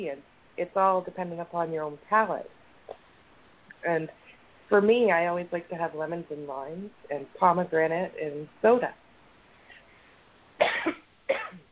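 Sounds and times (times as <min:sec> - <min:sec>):
speech: 0:00.0 - 0:03.0, 0:03.8 - 0:09.0
harsh coughs: 0:10.6 - 0:11.7.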